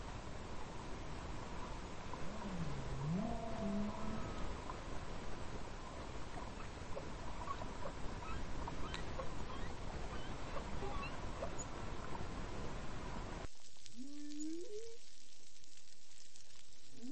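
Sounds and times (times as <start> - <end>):
dense rushing water noise: 0.0 - 13.5
whale song with rising swoop and faint higher squeaks: 2.2 - 4.8, 5.8 - 11.7, 13.9 - 15.2, 16.9 - 17.1.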